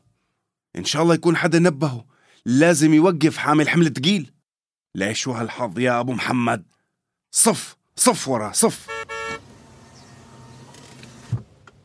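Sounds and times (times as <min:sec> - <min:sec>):
speech: 0:00.8 - 0:09.0
low hum of traffic: 0:08.3 - 0:11.8
car horn blast: 0:08.7 - 0:10.2.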